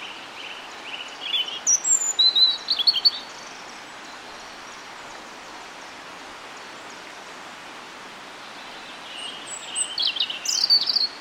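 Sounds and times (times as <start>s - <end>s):
European robin singing: 0.0s - 5.9s, 8.4s - 11.1s
background hiss: 0.0s - 11.1s.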